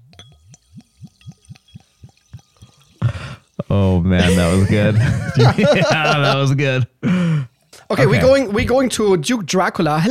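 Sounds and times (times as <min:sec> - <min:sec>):
sparkling water glugging out of a bottle: 0:00.0 - 0:04.7
speech: 0:03.7 - 0:07.2, 0:07.9 - 0:10.0
laughter: 0:04.2 - 0:06.8.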